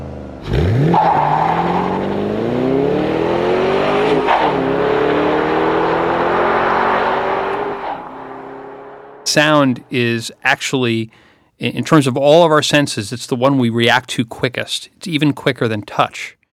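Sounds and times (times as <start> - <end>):
2008 Ford Mustang Bullitt V8 engine revving as the car drives off: 0.0 - 10.1
speech: 0.4 - 1.4, 9.3 - 16.4.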